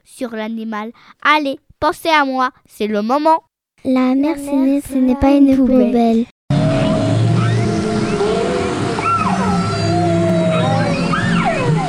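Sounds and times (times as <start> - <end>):
speech: 0.0 - 6.3
low continuous underwater rumble: 6.5 - 11.8
whale moans and squeals: 6.6 - 11.8.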